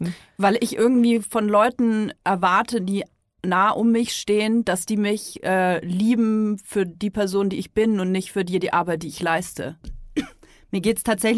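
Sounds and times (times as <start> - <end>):
speech: 0.0 - 11.3
short rough throat clearing: 10.2 - 10.4.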